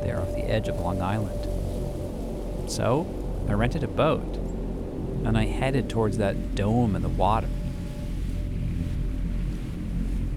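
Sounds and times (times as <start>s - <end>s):
strong wind at sea on a small rented boat off Long Island: 0.0s - 10.3s
speech: 0.5s - 1.5s, 2.7s - 4.4s, 5.2s - 7.6s.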